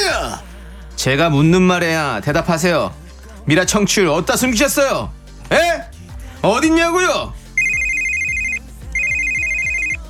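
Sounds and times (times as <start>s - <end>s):
speech: 1.0s - 7.4s
electronic telephone ringing: 7.6s - 10.0s.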